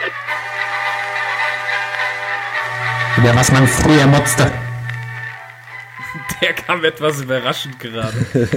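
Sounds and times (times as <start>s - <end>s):
choppy bursts: 0.1s - 7.1s
podcast intro jingle playing from soundboard: 2.1s - 5.3s
speech: 3.2s - 4.6s, 6.8s - 8.5s
laughter: 8.0s - 8.5s.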